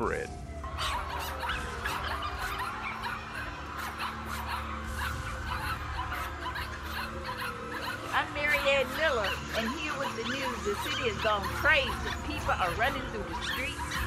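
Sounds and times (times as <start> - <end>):
puppies yipping, squealing and whimpering: 0.6 - 14.0
speech: 10.7 - 14.0.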